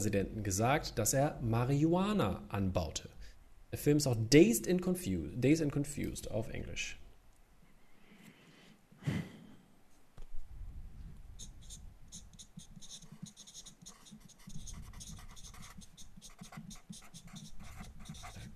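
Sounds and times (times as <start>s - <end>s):
speech: 0.0s - 7.0s, 9.0s - 9.3s
breathy sigh: 8.2s - 9.6s
pens scratching on paper writing quiz answers: 11.4s - 18.5s.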